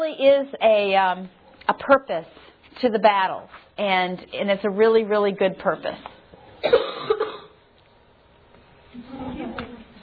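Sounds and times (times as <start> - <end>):
speech: 0.1 - 7.2
person coughing sharply: 6.6 - 7.6.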